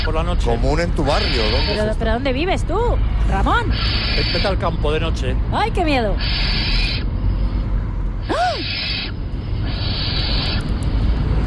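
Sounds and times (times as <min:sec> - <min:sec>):
barn owl hissing screeches at night: 0:00.0 - 0:00.3, 0:01.0 - 0:02.0, 0:03.5 - 0:04.8, 0:06.0 - 0:07.3, 0:08.2 - 0:11.1
speech: 0:00.0 - 0:06.8.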